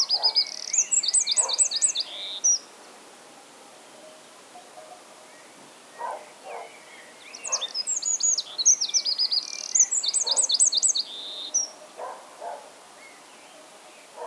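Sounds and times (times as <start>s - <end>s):
Eurasian wren Troglodytes troglodytes singing: 0.0s - 2.7s, 4.0s - 12.2s.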